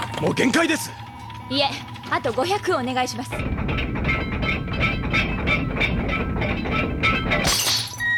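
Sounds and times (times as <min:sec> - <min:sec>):
speech: 0:00.2 - 0:03.9
pressure bulkhead straining metal rumble: 0:00.8 - 0:07.6
pressure bulkhead cracking in a shattering burst: 0:03.5 - 0:08.1.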